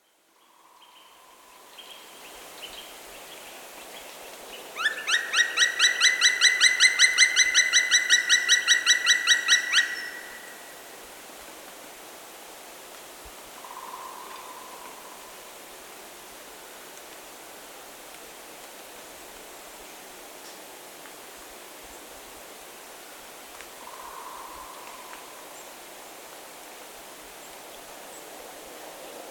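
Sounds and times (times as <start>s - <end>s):
black woodpecker calls: 4.8s - 10.5s.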